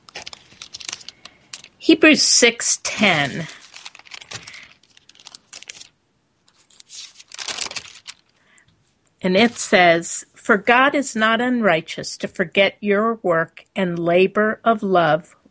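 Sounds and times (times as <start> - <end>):
thin book pages rustling and flipping: 0.0 - 1.8, 3.0 - 8.4
speech: 1.8 - 3.6, 9.2 - 15.4.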